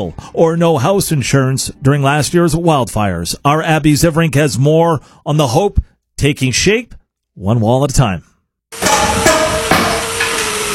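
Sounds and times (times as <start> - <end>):
speech: 0.0 - 8.3
hammers pounding on house construction: 8.7 - 10.7.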